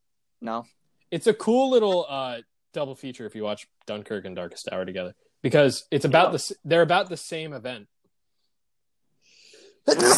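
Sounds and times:
speech: 0.4 - 7.9, 9.8 - 10.1
quick sharp inhale: 9.2 - 9.8
sneeze: 9.9 - 10.1.

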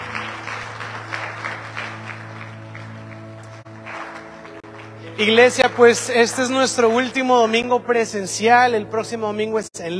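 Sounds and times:
church audience applauding: 0.0 - 7.6
speech: 5.2 - 9.9.

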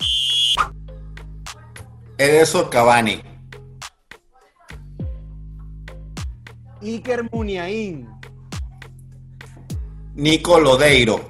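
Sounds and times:
referee's whistle blown for half-time: 0.0 - 0.7
speech: 2.2 - 3.3, 6.8 - 8.2, 10.2 - 11.2.

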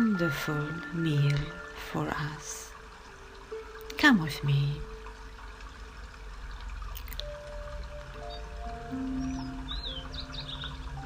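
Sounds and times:
trickling water: 0.0 - 11.0
speech: 0.2 - 2.7, 4.0 - 4.9, 8.9 - 9.6
birds twittering with high chirps and trills: 7.4 - 11.0.

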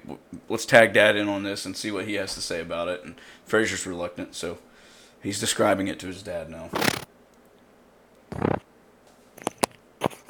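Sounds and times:
speech: 0.1 - 7.0
kitten chewing on a headset microphone: 9.4 - 10.2.

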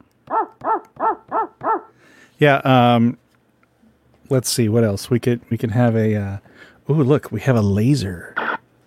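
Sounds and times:
sampled dog bark from keyboard: 0.3 - 1.9
speech: 2.4 - 3.2, 4.3 - 8.4.

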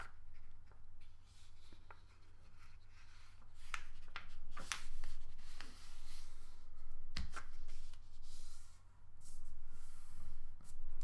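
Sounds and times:
something being folded in half: 0.0 - 6.4
low steady hum: 0.0 - 11.0.

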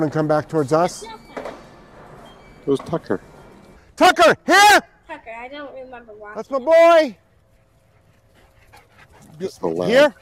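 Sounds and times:
speech: 0.0 - 1.2, 2.6 - 3.3, 4.0 - 4.9, 5.5 - 7.2, 9.4 - 10.2
low hum: 0.0 - 10.2
dog panting: 7.2 - 10.2.

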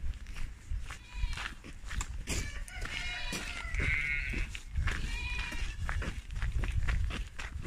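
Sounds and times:
shuffle of hooves: 0.0 - 7.6
goats and sheep bleating in a busy farmyard: 0.8 - 1.7, 2.3 - 6.0.

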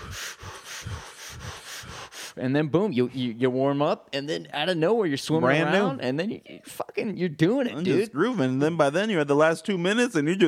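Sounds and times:
rapid forceful power-breathing exercise: 0.0 - 2.5
speech: 2.4 - 10.4.

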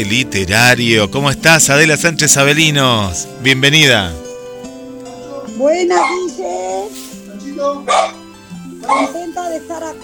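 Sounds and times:
speech: 0.0 - 4.2, 5.6 - 6.7, 7.6 - 8.2, 8.8 - 10.0
dog barking in the background of a house: 5.9 - 6.4, 7.9 - 8.2, 8.8 - 9.2.

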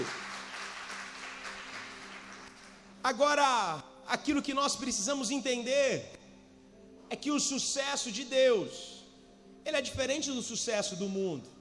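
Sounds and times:
crowd applauding: 0.0 - 2.9
speech: 3.0 - 6.2, 7.1 - 9.0, 9.6 - 11.5.

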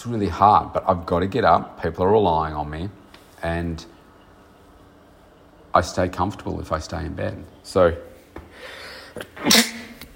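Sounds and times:
speech: 0.0 - 4.0, 5.8 - 9.8
person sneezing: 9.0 - 10.1.

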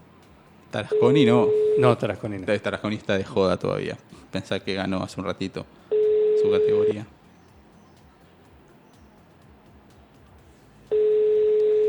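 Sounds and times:
speech: 0.7 - 7.2
telephone tone on a call that goes unanswered: 0.9 - 2.0, 5.9 - 7.0, 10.9 - 11.8.

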